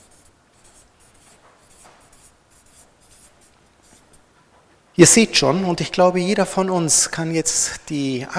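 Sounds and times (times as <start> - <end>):
scratchy strokes of writing on a board: 0.0 - 4.6
speech: 5.0 - 8.3.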